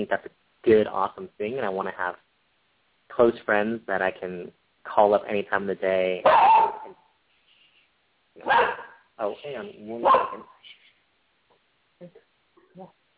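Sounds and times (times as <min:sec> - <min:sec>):
speech: 0:00.0 - 0:02.3, 0:03.2 - 0:07.0, 0:08.4 - 0:10.8, 0:12.0 - 0:12.2, 0:12.8 - 0:13.0
excited dog barking: 0:06.2 - 0:07.0, 0:08.4 - 0:09.1, 0:10.0 - 0:10.6
faint soft dog yips: 0:06.3 - 0:07.0.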